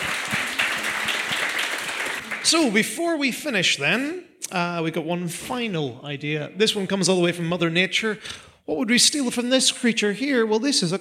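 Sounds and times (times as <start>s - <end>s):
crowd applause: 0.0s - 2.8s
speech: 2.4s - 11.0s.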